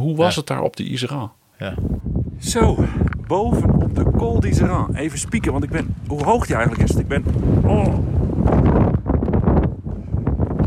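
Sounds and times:
speech: 0:00.0 - 0:08.8
strong wind buffeting microphone on mountain pass: 0:01.6 - 0:10.6.

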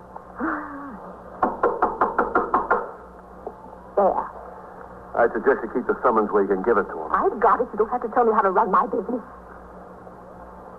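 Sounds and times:
firm knocking on a door: 0:01.4 - 0:03.0
speech: 0:04.0 - 0:04.3, 0:05.2 - 0:09.5.

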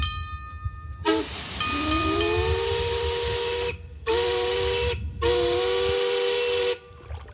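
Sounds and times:
paddle steamer steam whistle blasts on a lake: 0:01.0 - 0:06.9.

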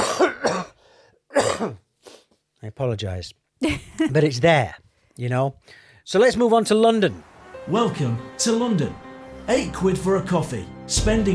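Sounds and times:
person coughing with a throaty rasp: 0:00.0 - 0:01.9
speech: 0:01.6 - 0:01.8, 0:02.6 - 0:11.3.

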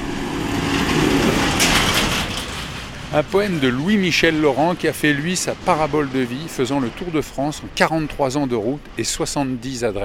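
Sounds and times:
tractor towing a trailer passing by: 0:00.0 - 0:05.8
rattling hiss: 0:00.0 - 0:10.0
speech: 0:03.1 - 0:10.0.

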